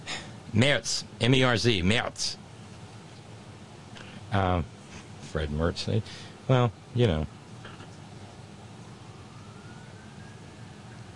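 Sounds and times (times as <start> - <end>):
speech: 0.5 - 2.4, 4.3 - 7.4
emergency siren wailing: 8.4 - 11.1.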